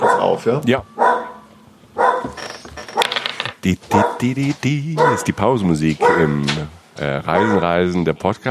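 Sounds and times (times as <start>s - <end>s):
small dog barking and yipping: 0.0s - 0.4s, 1.0s - 2.4s, 4.0s - 4.2s, 5.0s - 5.3s, 6.0s - 6.4s, 7.3s - 7.7s
speech: 0.3s - 1.1s, 3.6s - 8.4s.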